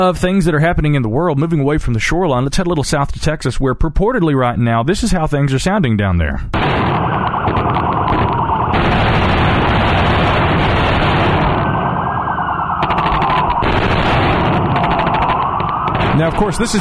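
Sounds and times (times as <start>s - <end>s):
speech: 0.0s - 7.6s, 16.2s - 16.8s
rapid gunfire bursts: 6.6s - 12.0s, 12.8s - 16.8s
wailing siren-like tone: 6.8s - 16.8s.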